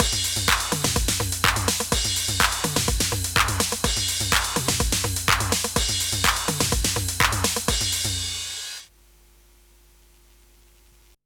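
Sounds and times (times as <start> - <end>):
TR-8 drum machine: 0.0 - 8.9.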